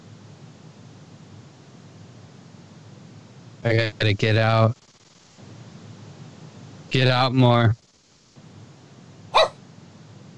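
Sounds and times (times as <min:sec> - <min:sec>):
low hum: 0:00.0 - 0:10.3
speech: 0:03.6 - 0:04.9, 0:06.9 - 0:07.8
dog barking: 0:09.4 - 0:09.6.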